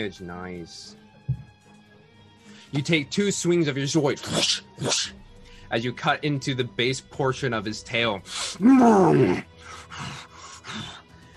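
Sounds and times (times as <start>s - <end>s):
speech: 0.0s - 1.0s, 2.7s - 10.2s
voice imitating a monster's growl: 8.4s - 11.0s.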